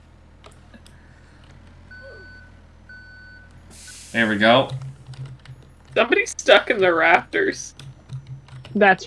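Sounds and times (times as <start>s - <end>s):
quiet hum: 0.0s - 9.0s
truck reversing beeps in a video game: 0.2s - 5.8s
speech: 4.1s - 4.8s, 6.0s - 7.8s, 8.8s - 9.0s.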